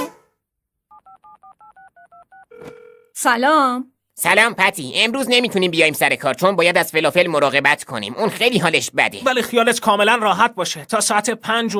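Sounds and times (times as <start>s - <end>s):
telephone number dialed with touch-tone beeps: 0.9s - 2.9s
speech: 2.6s - 11.7s.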